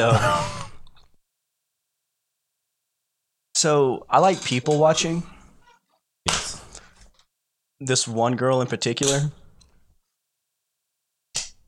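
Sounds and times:
speech: 0.0 - 0.5, 3.6 - 5.4, 7.8 - 9.4
several people slapping their bellies: 6.3 - 6.8, 11.4 - 11.6.

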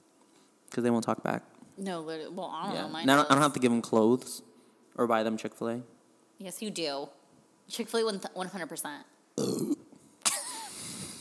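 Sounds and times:
speech: 0.8 - 9.7
burp: 9.4 - 9.9.

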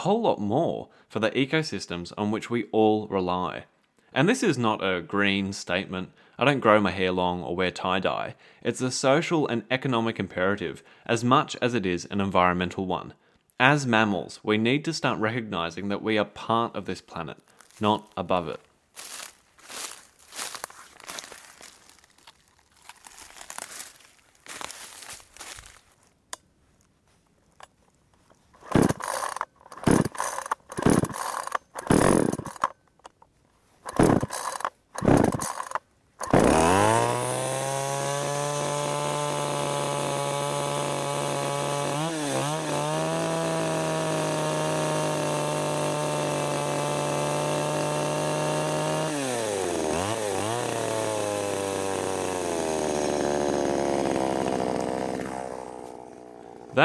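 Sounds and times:
speech: 0.0 - 19.1
gas Shindaiwa 352S chainsaw starting and revving: 17.5 - 25.6, 28.6 - 32.8, 33.8 - 56.8.

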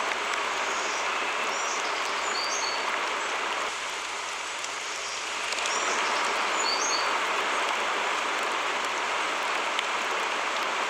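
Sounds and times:
steady rain: 0.0 - 10.8
soft high bird chirps: 0.4 - 3.4, 5.0 - 7.2.

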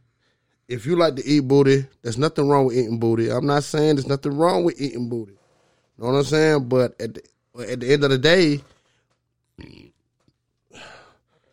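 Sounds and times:
speech: 0.7 - 5.4, 6.0 - 8.7, 9.6 - 9.9
man burping while drinking something bubbly: 9.6 - 10.0.

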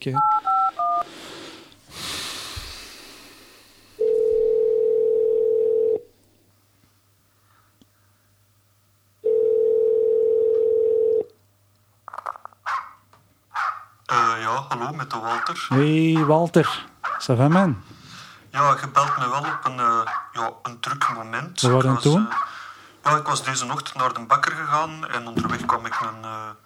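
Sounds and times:
speech: 0.0 - 1.1, 14.7 - 17.9, 18.6 - 26.6
telephone ringback tone while calling someone: 4.0 - 6.1, 9.2 - 11.3.

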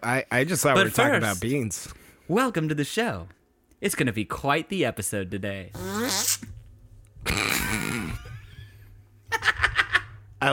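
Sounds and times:
speech: 0.0 - 6.6, 7.2 - 7.7
buzzy fart sound effect: 5.7 - 6.6, 7.2 - 8.5.

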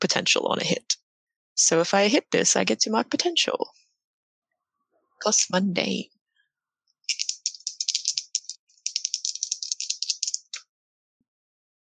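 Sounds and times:
speech: 0.0 - 1.0, 1.6 - 3.8, 5.2 - 6.2
dice rattling in a cup or hand: 7.1 - 10.6.

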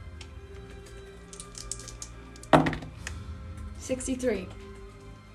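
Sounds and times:
dice rolled on a hard surface: 1.2 - 2.8
speech: 3.9 - 4.6.

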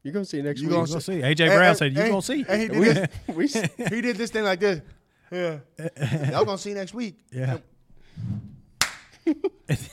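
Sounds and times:
speech: 0.0 - 8.4, 9.3 - 9.9
laughter: 2.6 - 4.4, 5.8 - 6.7, 9.1 - 9.9
loud sharp slap on a cheek: 8.8 - 9.1.

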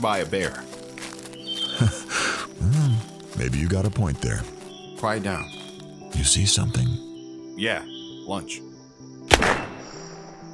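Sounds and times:
speech: 0.0 - 0.7, 1.8 - 2.1, 3.4 - 5.6, 6.2 - 8.7
gunshot fired at a rabbit outdoors: 9.3 - 10.2.

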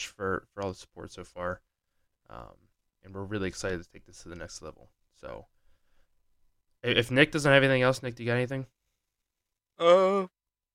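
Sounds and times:
speech: 0.0 - 1.7, 2.3 - 5.6, 6.8 - 8.8, 9.8 - 10.4
voiced yawn: 9.8 - 10.4.

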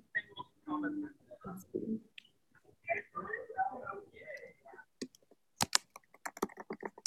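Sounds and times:
people talking: 0.0 - 5.0
rapid typing on a computer keyboard: 5.0 - 7.0.

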